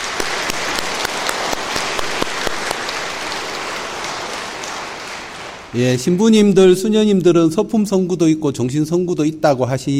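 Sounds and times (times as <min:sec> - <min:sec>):
audience applauding: 0:00.0 - 0:05.8
speech: 0:05.7 - 0:09.9.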